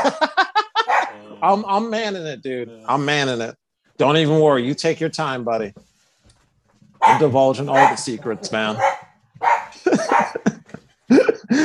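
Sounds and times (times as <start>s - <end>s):
laughter: 0.0s - 1.6s, 9.7s - 11.6s
dog barking: 0.8s - 1.2s, 7.0s - 10.5s
speech: 1.4s - 5.9s, 7.0s - 10.3s.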